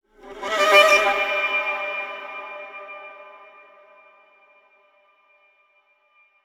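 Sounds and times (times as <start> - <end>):
viola: 0.2 - 3.5.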